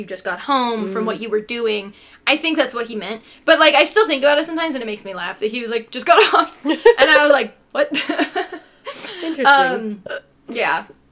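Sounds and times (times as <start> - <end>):
speech: 0.0 - 8.4, 9.2 - 11.0
person burping with a drawn-out gurgling belch: 9.4 - 10.3.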